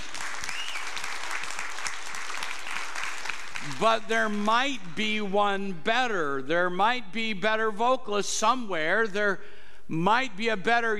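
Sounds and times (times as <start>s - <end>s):
church audience applauding: 0.0s - 3.9s
speech: 3.8s - 10.9s.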